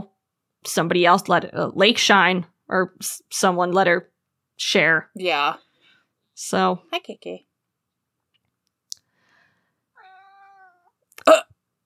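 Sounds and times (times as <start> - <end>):
speech: 0.6 - 5.6, 6.4 - 7.5
cat meowing plaintively: 10.0 - 11.0.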